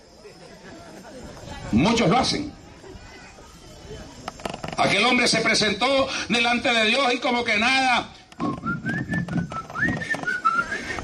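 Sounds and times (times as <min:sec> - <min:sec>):
speech: 0:01.7 - 0:02.6, 0:04.8 - 0:08.5
person whistling a cheerful church chorus melody: 0:08.4 - 0:11.0.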